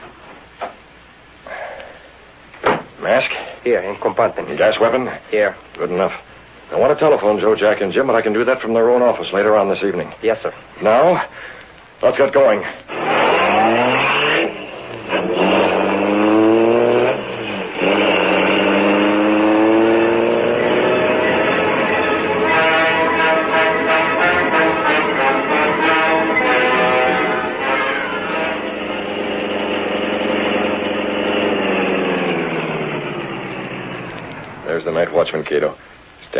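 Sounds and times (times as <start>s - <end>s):
speech: 3.0s - 13.0s
car engine revving then idling: 12.9s - 35.0s.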